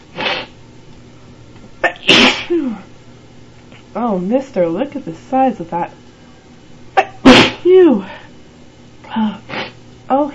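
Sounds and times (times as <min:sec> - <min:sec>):
human sneeze: 0:00.2 - 0:00.5, 0:01.8 - 0:02.9, 0:07.0 - 0:07.7, 0:09.2 - 0:09.8
speech: 0:04.0 - 0:06.0, 0:07.7 - 0:08.2.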